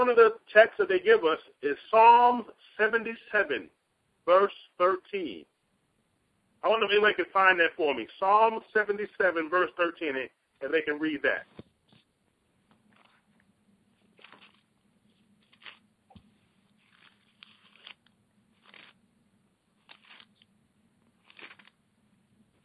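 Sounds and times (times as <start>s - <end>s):
speech: 0.0s - 5.5s, 6.6s - 11.6s
Bible pages being turned: 12.8s - 13.4s, 14.0s - 19.0s, 19.8s - 21.8s.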